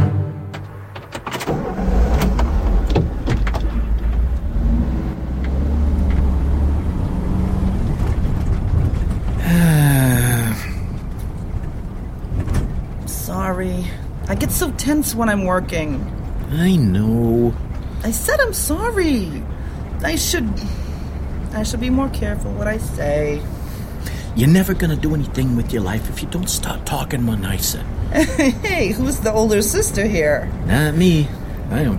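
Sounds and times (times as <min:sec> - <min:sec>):
car engine rumbling while pulling in: 0:00.2 - 0:31.9
clunks: 0:00.5 - 0:04.5, 0:10.9 - 0:13.1
speech: 0:14.5 - 0:20.8, 0:21.5 - 0:23.5, 0:24.4 - 0:31.9.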